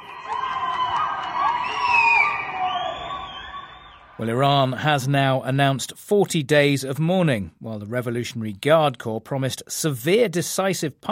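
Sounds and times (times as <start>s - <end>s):
crowd cheering and shouting from apartment balconies: 0.0s - 4.2s
shrill whistles from apartment balconies: 0.0s - 4.2s
speech: 4.2s - 11.1s.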